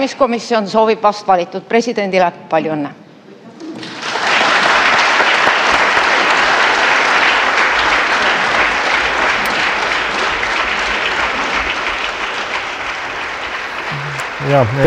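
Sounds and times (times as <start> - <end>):
speech: 0.0 - 3.0, 14.5 - 14.8
parliament members applauding: 3.8 - 14.8.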